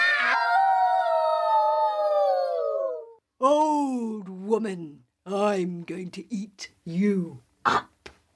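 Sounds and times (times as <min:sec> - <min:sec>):
voice imitating a wolf howling: 0:00.1 - 0:04.1
speech: 0:04.6 - 0:07.9.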